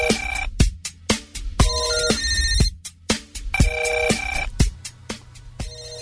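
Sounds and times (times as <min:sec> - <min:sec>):
telephone ringing with a bright melodic electronic ringtone: 0:00.0 - 0:00.5, 0:01.6 - 0:02.8, 0:03.6 - 0:04.5, 0:05.6 - 0:05.9.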